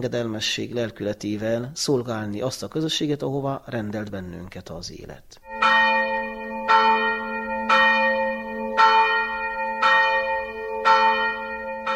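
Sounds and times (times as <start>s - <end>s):
speech: 0.0s - 5.8s
Franciscan church bell tolling: 5.4s - 11.9s.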